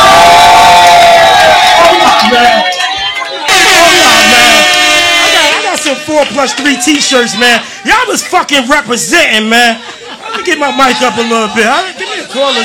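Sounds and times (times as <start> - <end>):
scattered high yells: 0.0 - 7.6
large live crowd cheering and shouting in Jersey: 0.0 - 12.6
horn blasts: 3.4 - 6.4
speech: 6.2 - 12.6
laughter: 9.5 - 12.6.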